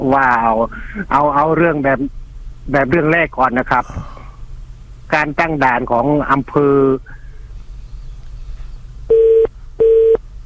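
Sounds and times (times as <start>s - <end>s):
speech: 0.0s - 4.2s, 5.1s - 7.2s
faint low hum: 0.0s - 10.4s
telephone busy tone of electronic beeps: 9.1s - 10.2s.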